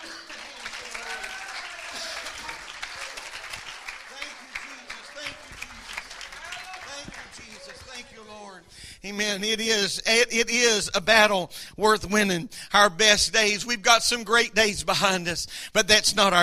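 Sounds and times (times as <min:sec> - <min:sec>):
faint voices and cheers in the crowd: 0:00.0 - 0:08.2
audience applauding: 0:00.0 - 0:08.5
speech: 0:09.0 - 0:16.4.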